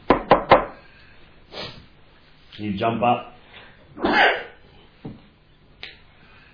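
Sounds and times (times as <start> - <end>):
sharp knocks on a door: 0.1 - 0.7
speech: 2.6 - 3.3, 4.0 - 4.4.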